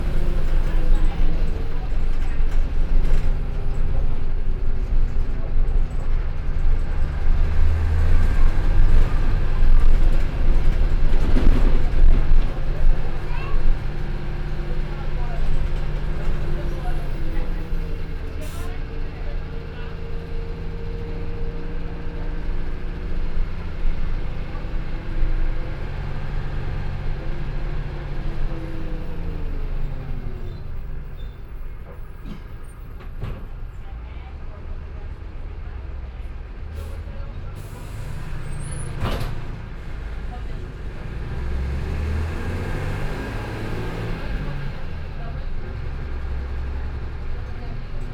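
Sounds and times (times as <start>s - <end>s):
bus interior ambience in Brazil: 0.0s - 48.1s.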